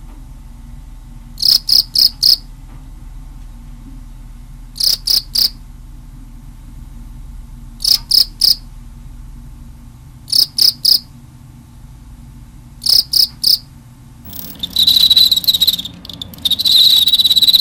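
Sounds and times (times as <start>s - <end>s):
cricket chirping in mating: 1.4s - 2.4s, 4.8s - 5.6s, 7.8s - 8.6s, 10.3s - 11.0s, 12.8s - 13.6s, 14.3s - 17.5s.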